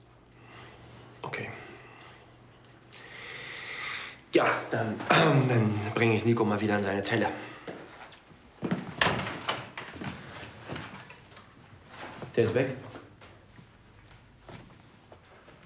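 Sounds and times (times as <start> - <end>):
speech: 4.4 - 7.5, 12.4 - 13.0
door being pushed shut with clattering knocks: 9.0 - 9.9.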